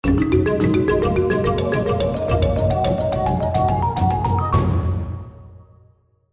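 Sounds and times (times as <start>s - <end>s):
musical spin sound: 0.0s - 4.6s.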